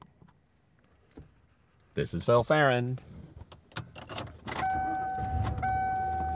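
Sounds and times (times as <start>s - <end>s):
speech: 2.0s - 3.2s
car engine rumble on the road: 3.2s - 6.3s
electronic chime tone: 4.7s - 6.3s.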